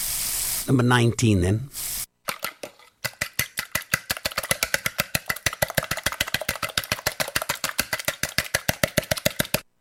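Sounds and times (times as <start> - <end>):
speech: 0.7 - 1.9
egg being whisked in a bowl: 2.3 - 9.7.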